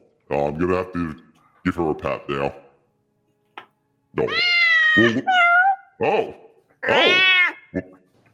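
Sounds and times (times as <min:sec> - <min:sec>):
speech: 0:00.3 - 0:02.6, 0:04.2 - 0:05.4, 0:06.0 - 0:07.9
cat meowing: 0:04.2 - 0:05.9, 0:06.8 - 0:07.7.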